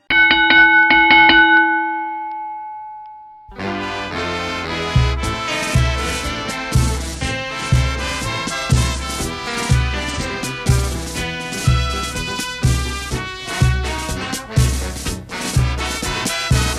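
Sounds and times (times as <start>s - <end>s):
bright metallic gong struck repeatedly: 0.0s - 3.5s
loud band music, an anthem: 3.5s - 16.7s.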